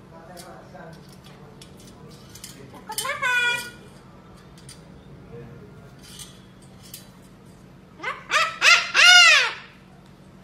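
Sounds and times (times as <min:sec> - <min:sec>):
parrot making harsh squawks: 0:02.9 - 0:03.8, 0:08.0 - 0:09.8.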